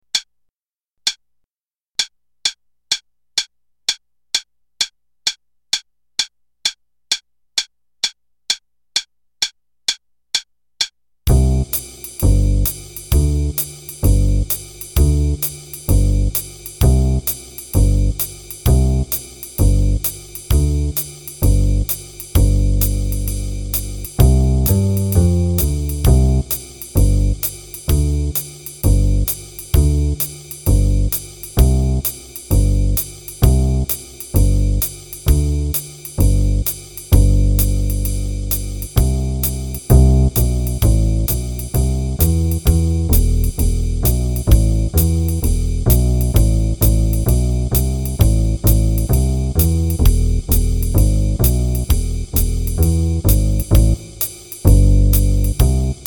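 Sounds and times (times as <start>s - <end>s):
bass: 11.3s - 56.0s
drums: 11.3s - 56.0s.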